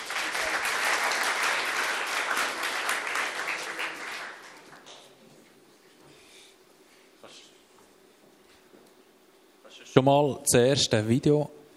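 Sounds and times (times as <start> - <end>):
crowd applause: 0.0 - 5.1
speech: 10.0 - 11.7.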